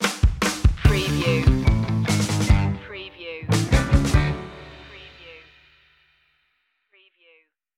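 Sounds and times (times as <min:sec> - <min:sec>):
fast driving groove stinger: 0:00.2 - 0:02.8, 0:03.6 - 0:04.9.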